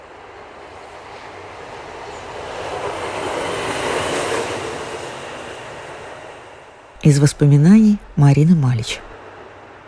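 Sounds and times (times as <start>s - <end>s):
train rolling past with broad rushing rumble: 0.0s - 9.8s
speech: 7.1s - 9.1s.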